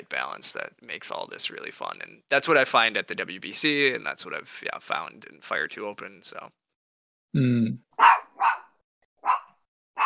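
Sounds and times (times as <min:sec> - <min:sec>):
speech: 0:00.1 - 0:06.6, 0:07.3 - 0:08.1
dog barking at a house: 0:08.0 - 0:10.0.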